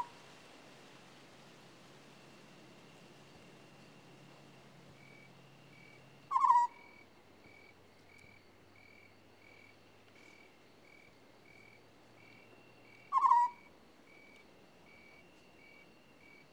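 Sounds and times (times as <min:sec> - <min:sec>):
African scops owl giving trilled croaks: 0:06.3 - 0:07.0, 0:13.1 - 0:13.7.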